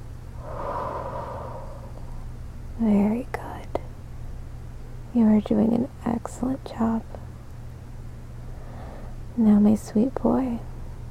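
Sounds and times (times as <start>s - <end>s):
steady low hum: 0.0s - 4.0s
soft human breath during a guided relaxation exercise: 0.3s - 2.4s, 8.5s - 9.2s
speech: 2.8s - 3.4s, 5.2s - 7.2s, 9.4s - 10.7s.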